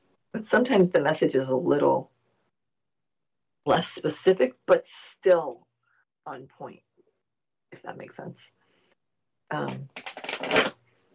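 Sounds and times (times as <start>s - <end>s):
speech: 0.4s - 2.2s, 3.6s - 5.6s, 6.3s - 6.8s, 7.7s - 8.6s, 9.5s - 10.6s
deck of cards shuffled on a lap in a bathroom: 9.9s - 10.8s.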